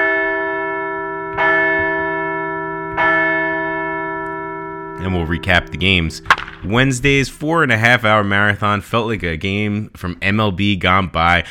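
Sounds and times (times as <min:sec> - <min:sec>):
large bell rung to celebrate a baseball series win: 0:00.0 - 0:07.0
speech: 0:05.0 - 0:11.4.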